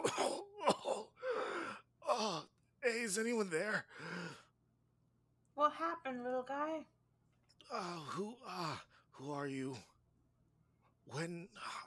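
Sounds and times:
person coughing: 0:00.0 - 0:01.2
speech: 0:03.1 - 0:04.4, 0:05.6 - 0:07.0, 0:07.7 - 0:09.9, 0:11.1 - 0:11.8
throaty groaning: 0:07.6 - 0:09.0.

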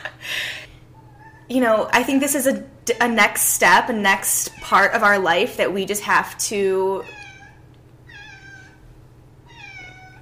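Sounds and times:
low hum: 0:00.0 - 0:10.2
speech: 0:01.5 - 0:07.2
cat meowing: 0:07.0 - 0:08.8, 0:09.4 - 0:10.2.

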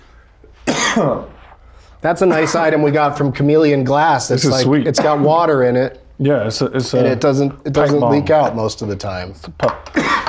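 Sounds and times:
man's harsh throaty cough: 0:00.6 - 0:01.4, 0:02.2 - 0:02.7, 0:04.5 - 0:05.4, 0:09.9 - 0:10.2
speech: 0:01.0 - 0:01.4, 0:02.0 - 0:10.2.

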